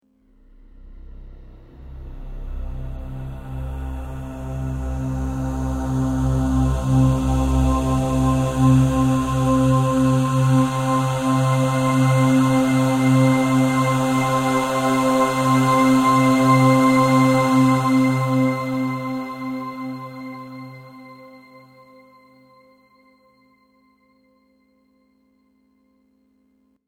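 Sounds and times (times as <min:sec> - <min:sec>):
heavenly angelic breathy airy voice transition: 0:00.8 - 0:22.0.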